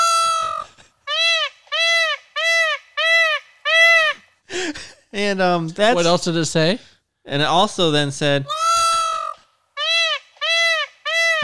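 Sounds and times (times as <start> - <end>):
loose peacock calling: 0.0 - 4.3, 8.5 - 11.4
speech: 5.2 - 8.6.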